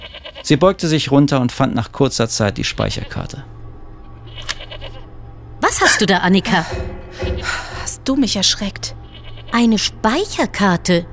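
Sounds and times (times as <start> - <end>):
goat bleating: 0.0 - 0.5, 4.3 - 5.0, 9.0 - 9.6
speech: 0.4 - 3.6, 6.0 - 6.8, 8.0 - 11.1
steady low hum: 1.2 - 11.1.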